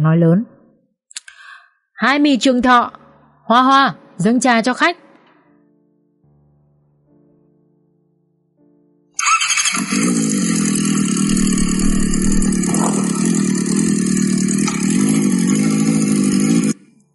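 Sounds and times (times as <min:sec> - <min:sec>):
speech: 0:00.0 - 0:00.5, 0:02.0 - 0:05.0
convoy of motorcycles arriving and stopping: 0:09.2 - 0:16.8.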